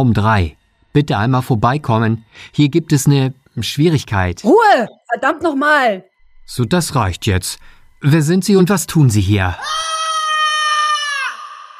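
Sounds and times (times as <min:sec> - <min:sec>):
speech: 0:00.0 - 0:09.9
desperate high-pitched scream echoing through corridors: 0:09.6 - 0:11.7.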